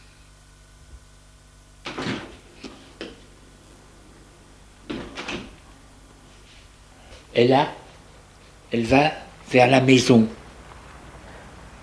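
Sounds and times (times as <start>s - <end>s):
low steady hum: 0.0s - 11.8s
door to the courtyard being unlatched and pushed open: 4.9s - 5.6s
speech: 7.4s - 7.8s, 8.7s - 10.4s.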